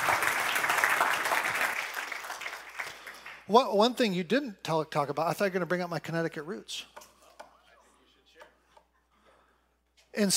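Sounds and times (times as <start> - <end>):
crowd clapping: 0.0 - 3.5
speech: 3.5 - 7.0, 10.2 - 10.3.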